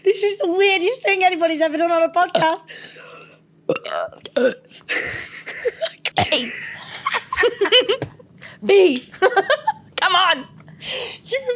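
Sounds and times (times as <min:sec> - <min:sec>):
speech: 0:00.1 - 0:03.1, 0:03.7 - 0:11.5
loud croaky burp forced on command: 0:03.7 - 0:04.7
people laughing: 0:04.9 - 0:08.2.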